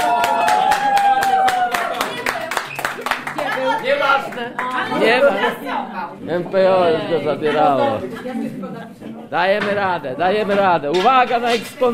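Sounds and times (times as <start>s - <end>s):
small group applauding: 0.0s - 5.4s
people talking and calling out: 1.7s - 11.9s
speech: 4.4s - 11.9s.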